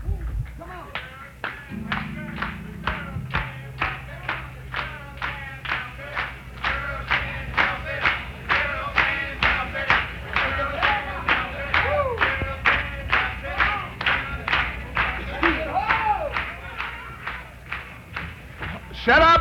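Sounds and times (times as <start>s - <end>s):
crowd clapping in rhythm: 0.9s - 19.3s
low hum: 1.7s - 15.0s.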